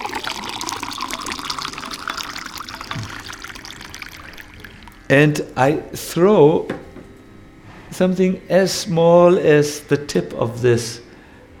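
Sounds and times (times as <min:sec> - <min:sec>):
water swishing and trickling inside a drinking glass: 0:00.0 - 0:05.1
speech: 0:05.1 - 0:06.8, 0:08.0 - 0:11.0.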